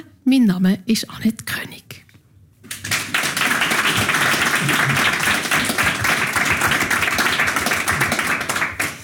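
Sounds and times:
speech: 0.3s - 1.9s
live audience applause: 2.7s - 9.0s.

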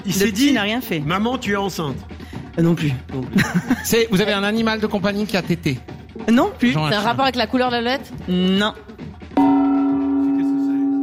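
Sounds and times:
speech: 0.1s - 8.9s
gong struck: 9.4s - 11.0s.

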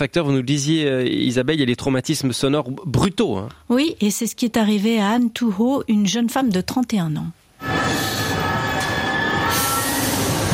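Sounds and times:
speech: 0.0s - 8.1s
high-pitched metallic squeal of Paris metro train braking: 7.6s - 10.5s
metro train rumbling in Paris: 7.6s - 10.5s.

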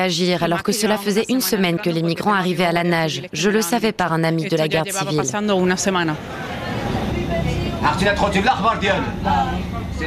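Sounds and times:
speech: 0.0s - 6.5s, 7.8s - 10.0s
passengers talking in overlapping murmur on a bus: 0.0s - 10.0s
steady low engine rumble of a bus interior: 4.9s - 10.0s.

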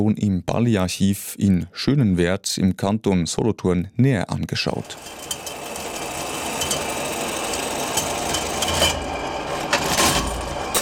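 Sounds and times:
speech: 0.0s - 5.4s
old leather area measuring machine rattling and whirring: 4.8s - 10.7s.

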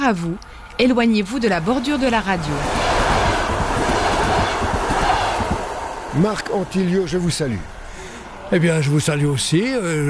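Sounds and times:
model railway train running on track: 0.0s - 10.0s
speech: 0.1s - 2.8s, 6.2s - 7.7s, 8.5s - 10.0s
model train wheels clicking: 1.2s - 7.9s.

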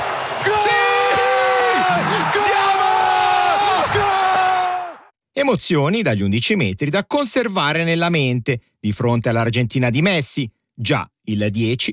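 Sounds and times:
big crowd shouting in celebration: 0.0s - 5.1s
speech: 5.4s - 11.9s.

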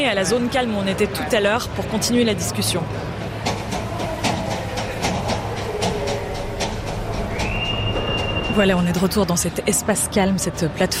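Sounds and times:
speech: 0.0s - 3.3s, 8.6s - 10.9s
crowd din in a busy train station: 0.0s - 10.9s
suitcases being wheeled, clattering clicks: 3.4s - 9.2s
low hum: 3.9s - 9.7s.

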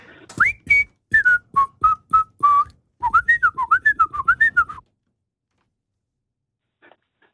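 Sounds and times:
person whistling a late-1960s number-one hit song melody: 0.3s - 4.8s.

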